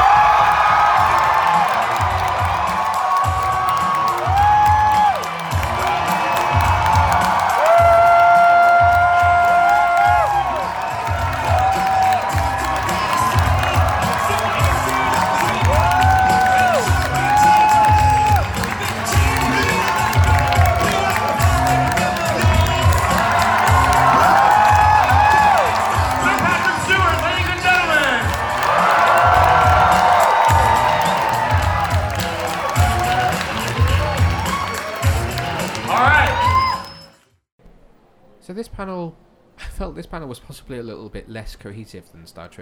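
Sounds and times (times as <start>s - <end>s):
scattered clapping: 0.0s - 37.0s
convention crowd screaming and cheering: 0.0s - 37.2s
speech: 40.0s - 42.6s.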